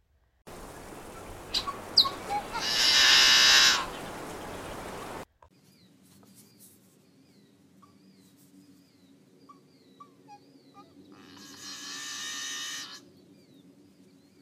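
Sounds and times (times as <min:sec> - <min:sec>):
rushing noise: 0:00.5 - 0:05.2
yellow-headed blackbird snarl song: 0:00.5 - 0:14.4.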